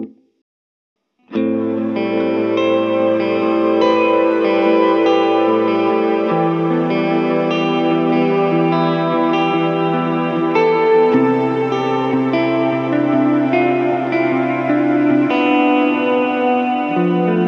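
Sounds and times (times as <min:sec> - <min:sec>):
trailing synth pads: 0:01.4 - 0:17.4.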